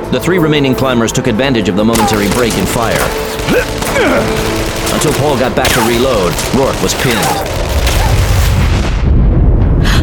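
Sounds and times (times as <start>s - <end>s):
speech: 0.1s - 7.5s
loud deep explosion on a snowy summit during a gunfight: 3.4s - 10.0s.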